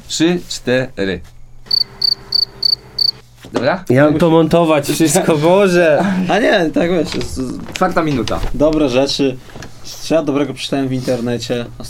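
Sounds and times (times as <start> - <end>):
speech: 0.1 - 1.4, 3.5 - 11.8
crickets chirping: 1.4 - 3.2.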